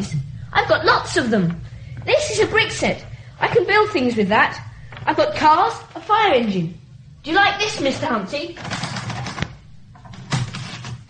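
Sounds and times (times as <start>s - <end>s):
speech: 0.0s - 8.9s
rattling hum: 0.0s - 11.0s
toy typewriter with plastic keys clacking: 8.6s - 9.4s.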